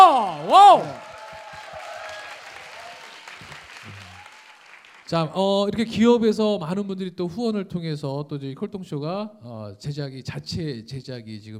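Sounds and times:
sustained applause from a large audience: 0.0s - 5.1s
speech: 5.1s - 11.5s.

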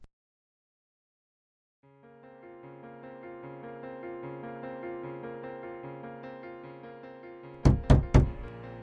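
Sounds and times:
soft sustained musical backdrop: 1.9s - 8.8s
loud forceful bangs on a home's front door: 7.6s - 8.5s.

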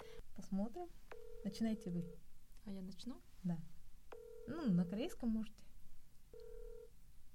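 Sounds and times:
speech: 0.4s - 3.8s, 4.5s - 5.7s
phone ringback tone through a handset during an outgoing call: 1.1s - 2.2s, 4.1s - 5.1s, 6.3s - 6.9s.

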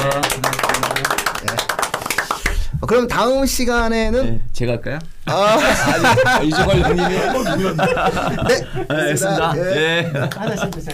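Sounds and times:
small group clapping hands: 0.0s - 2.9s, 10.2s - 10.9s
speech: 2.9s - 10.9s
laughter: 5.3s - 10.9s.

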